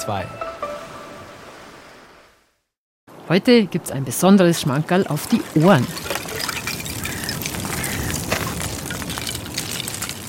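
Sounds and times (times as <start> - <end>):
speech: 0.0 - 0.4, 3.3 - 6.1
water sloshing from swimming strokes: 4.9 - 10.2
small floating ice pieces clinking against each other: 5.2 - 10.2.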